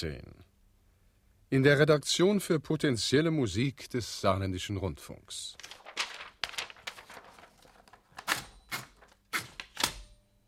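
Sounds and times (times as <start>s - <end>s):
speech: 0.0s - 0.4s, 1.5s - 5.8s
old typewriter typing: 5.6s - 10.1s.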